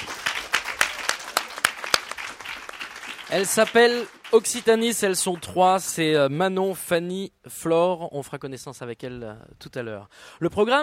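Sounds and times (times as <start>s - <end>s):
audience applause: 0.0s - 5.6s
speech: 3.3s - 10.8s.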